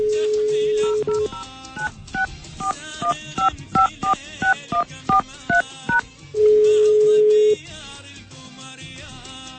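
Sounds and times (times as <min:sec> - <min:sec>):
telephone ringing tones of an unanswered outgoing call: 0:00.1 - 0:07.5
telephone keypad beeps: 0:00.8 - 0:06.0.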